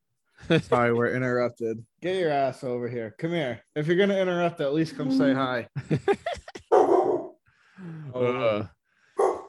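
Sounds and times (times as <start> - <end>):
speech: 0.5 - 6.6, 7.8 - 8.8
dog barking sharply: 6.7 - 7.4, 9.2 - 9.4.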